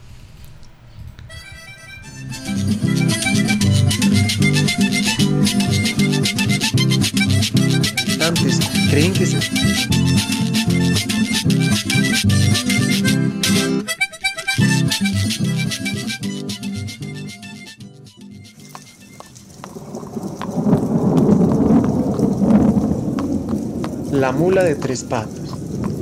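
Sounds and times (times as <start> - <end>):
heavy rain: 0.0 - 11.5, 18.6 - 26.0
deep roll of thunder: 0.0 - 13.1, 18.7 - 26.0
music: 1.4 - 19.2
speech: 9.0 - 10.4, 24.3 - 25.4.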